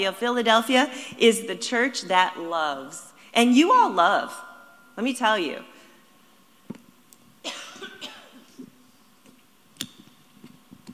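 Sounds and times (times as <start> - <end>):
speech: 0.0 - 5.7
person in a short harsh raspy coughing fit: 7.4 - 8.6.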